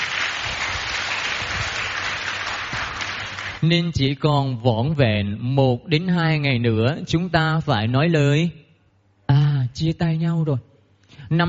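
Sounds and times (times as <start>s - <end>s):
audience applause at a children's family retreat: 0.0s - 3.6s
speech: 3.6s - 8.6s, 9.8s - 10.7s, 11.3s - 11.4s.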